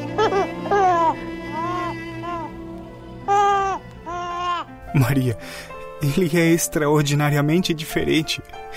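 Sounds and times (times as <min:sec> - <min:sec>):
newborn baby crying: 0:00.1 - 0:04.8
speech: 0:05.0 - 0:08.7.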